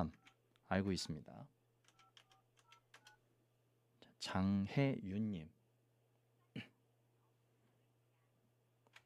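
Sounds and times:
speech: 0.0 - 1.6, 4.2 - 5.6
telephone keypad dialing tones: 1.9 - 3.2.

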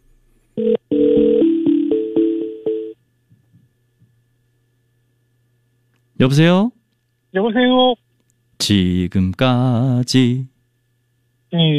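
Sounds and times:
phone ringing while a call connects: 0.6 - 3.0
speech: 6.2 - 8.0, 8.6 - 10.5, 11.5 - 11.7.

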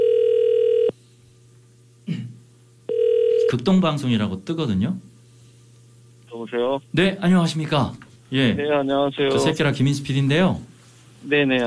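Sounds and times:
telephone ringback tone of an outgoing call: 0.0 - 0.9, 2.9 - 3.5
speech: 3.6 - 5.1, 6.4 - 11.6.

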